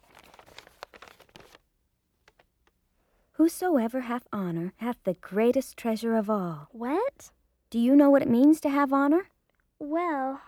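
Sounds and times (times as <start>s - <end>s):
old dry paper being unfolded and crinkling: 0.0s - 1.6s, 2.2s - 2.8s
speech: 3.4s - 10.4s.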